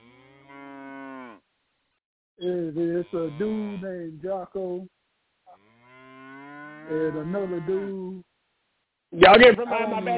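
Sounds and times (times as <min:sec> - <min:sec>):
cow mooing: 0:00.0 - 0:01.4, 0:02.8 - 0:03.9, 0:05.5 - 0:08.0
speech: 0:02.4 - 0:05.0, 0:06.9 - 0:08.3, 0:09.1 - 0:10.1.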